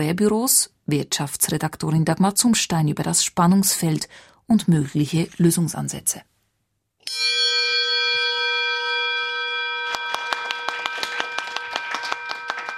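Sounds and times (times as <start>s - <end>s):
speech: 0.0s - 6.3s
bell at a staffing agency rung for a job placement: 7.0s - 12.7s
sharp rhythmic taps or claps: 9.8s - 12.7s.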